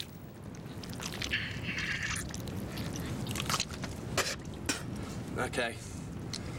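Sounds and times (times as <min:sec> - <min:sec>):
wet biting and chewing into a live octopus: 0:00.0 - 0:04.7
speech: 0:05.4 - 0:05.9.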